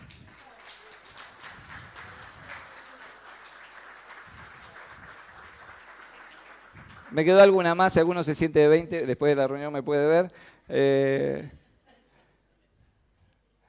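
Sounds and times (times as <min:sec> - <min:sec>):
church congregation applauding at a Sunday service: 0:00.0 - 0:08.0
speech: 0:07.1 - 0:11.6.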